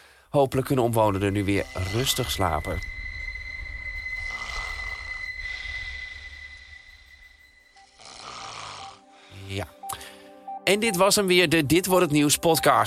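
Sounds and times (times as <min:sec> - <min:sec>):
speech: 0:00.3 - 0:03.0, 0:10.7 - 0:12.8
low rumble: 0:01.2 - 0:07.8
tram wheels squealing while rounding a curve: 0:01.2 - 0:07.8.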